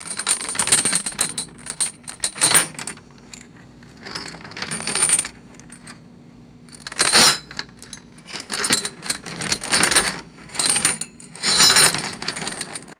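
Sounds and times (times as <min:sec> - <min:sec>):
heavy metal chain rattling and clattering: 0:00.0 - 0:12.9.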